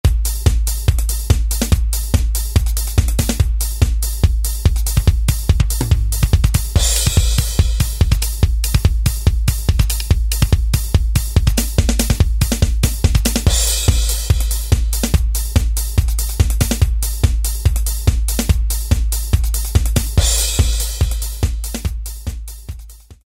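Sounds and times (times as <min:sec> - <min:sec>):
techno beat on a drum machine: 0:00.0 - 0:23.2.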